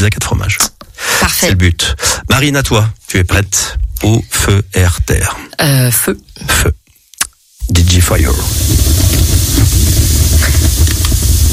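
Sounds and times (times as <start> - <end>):
speech: 0.0 - 0.7, 1.3 - 6.8, 7.7 - 9.1
faint fire crackles: 7.0 - 11.5
fire flames hissing: 7.6 - 11.5
low rumbling roar of fire: 7.6 - 11.5.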